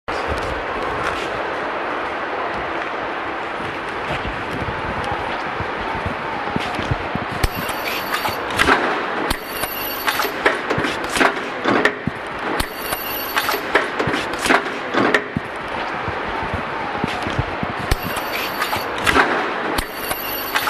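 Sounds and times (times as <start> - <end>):
ticket gates: 0.1 - 20.6.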